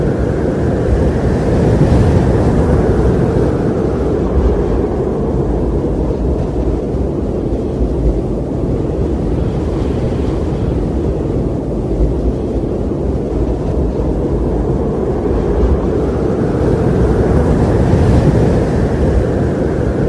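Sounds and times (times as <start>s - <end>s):
night wind: 0.0s - 20.0s.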